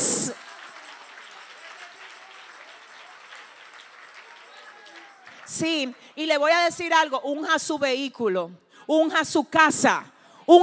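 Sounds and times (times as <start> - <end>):
audience applauding: 0.0 - 6.1
speech: 5.5 - 10.6.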